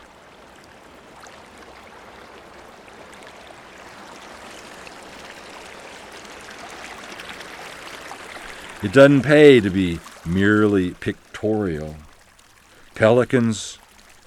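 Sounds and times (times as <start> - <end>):
shower water running through a pipe and down a drain: 8.3 - 14.2
speech: 8.8 - 12.1, 13.0 - 13.8.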